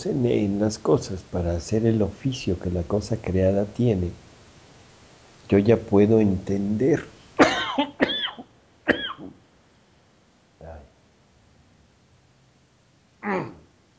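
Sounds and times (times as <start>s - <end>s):
speech: 0.0s - 4.2s, 5.5s - 7.1s
soft coughing: 7.4s - 9.4s
throat clearing: 7.4s - 9.4s.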